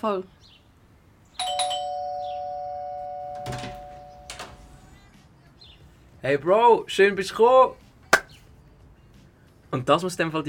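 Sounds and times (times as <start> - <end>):
speech: 0.0 - 0.6, 6.2 - 7.8, 9.7 - 10.4
doorbell chiming with a bright electronic tone: 1.4 - 4.6.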